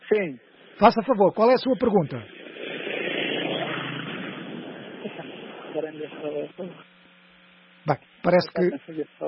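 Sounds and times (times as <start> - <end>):
speech: 0.1 - 2.4, 6.0 - 6.9, 7.8 - 9.2
car rushing past on a street: 0.5 - 6.8.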